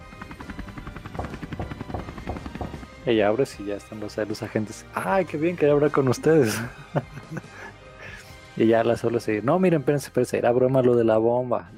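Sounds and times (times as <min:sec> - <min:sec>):
loud helicopter engine whine: 0:00.0 - 0:03.0
helicopter rotors thumping: 0:00.0 - 0:03.3
speech: 0:03.1 - 0:07.1, 0:08.6 - 0:11.7
laughter: 0:06.0 - 0:08.2.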